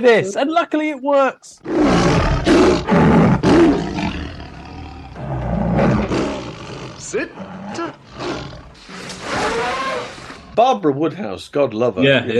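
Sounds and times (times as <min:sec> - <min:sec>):
speech: 0:00.0 - 0:03.2, 0:07.0 - 0:08.5, 0:10.6 - 0:12.3
lion roaring: 0:01.6 - 0:10.6.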